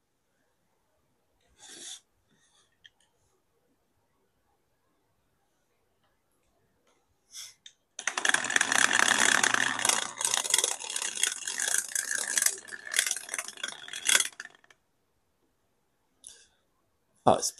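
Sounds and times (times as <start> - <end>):
die rattling in a cup: 8.0 - 14.8
speech: 17.3 - 17.5.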